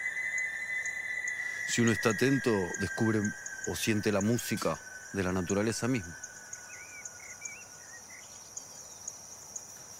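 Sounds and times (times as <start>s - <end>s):
faint warbling bird notes: 0.0s - 8.7s
crickets chirping: 0.0s - 9.9s
speech: 1.7s - 6.2s.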